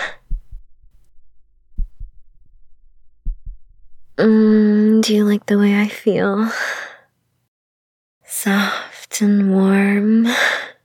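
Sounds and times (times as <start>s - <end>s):
slow heartbeat: 0.0s - 4.2s
speech: 4.2s - 6.8s, 8.4s - 10.7s.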